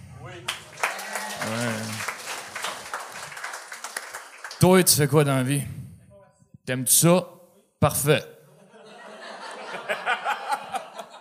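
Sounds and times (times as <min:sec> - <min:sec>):
live show audience applause: 0:00.4 - 0:04.9
speech: 0:04.6 - 0:05.8, 0:06.7 - 0:08.3
laughter: 0:08.5 - 0:11.1.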